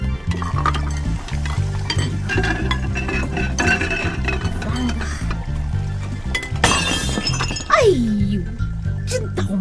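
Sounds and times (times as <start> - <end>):
low tonal backing: 0.0 - 9.5
glass and crockery clinking and clattering while washing dishes: 0.2 - 7.8.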